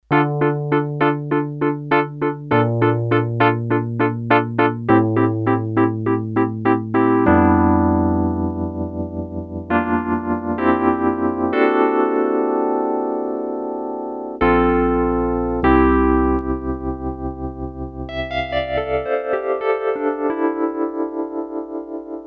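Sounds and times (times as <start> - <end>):
Korg DS-8 electric piano with factory patches: 0.0 - 22.2.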